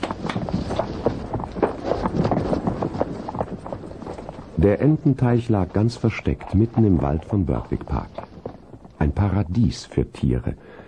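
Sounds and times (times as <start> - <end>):
two horses ridden away, hooves clopping: 0.0 - 9.9
speech: 4.6 - 8.3, 9.0 - 10.8.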